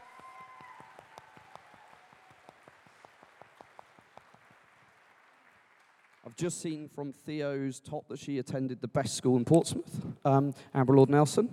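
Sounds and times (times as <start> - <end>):
audience applauding a speaker onto a stage: 0.0 - 6.8
speech: 6.3 - 11.5.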